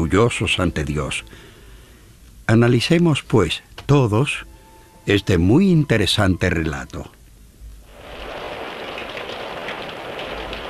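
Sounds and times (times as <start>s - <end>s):
speech: 0.1s - 1.5s, 2.5s - 7.2s
heavy rain: 7.8s - 10.6s.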